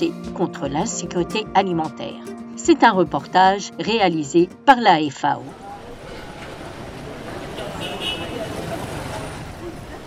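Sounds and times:
speech: 0.0 - 5.6
steady traffic rumble with cars and motorbikes: 5.2 - 10.0
vehicles passing: 5.2 - 10.0
crowd of voices murmuring at an open-air market: 5.5 - 10.0
short horn toot: 7.5 - 8.6.

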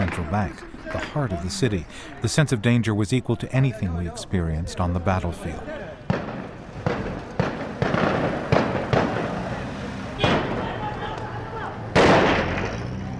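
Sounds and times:
speech: 0.3 - 5.8
gunfire in a city square near the central bank: 6.1 - 10.8, 11.9 - 13.0.

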